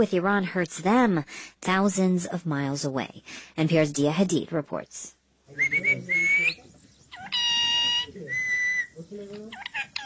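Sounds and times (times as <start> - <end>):
speech: 0.0 - 6.4
pet parrot on a balcony perch calling for rice: 5.6 - 10.0.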